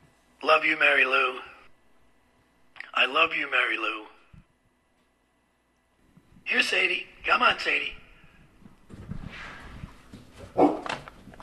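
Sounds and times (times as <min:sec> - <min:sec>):
speech: 0:00.6 - 0:01.5, 0:03.0 - 0:04.1, 0:06.5 - 0:08.0
dog barking: 0:10.5 - 0:11.0.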